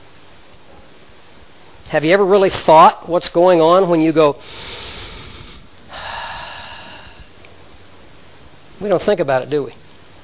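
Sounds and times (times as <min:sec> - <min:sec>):
speech: 0:01.9 - 0:04.8, 0:08.8 - 0:09.8
deep breath in: 0:04.4 - 0:07.4.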